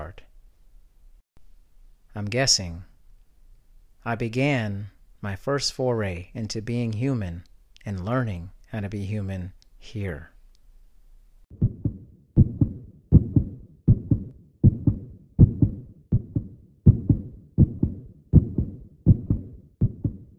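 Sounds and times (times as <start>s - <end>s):
speech: 2.2s - 2.9s, 4.0s - 10.3s
human heartbeat: 11.5s - 20.3s.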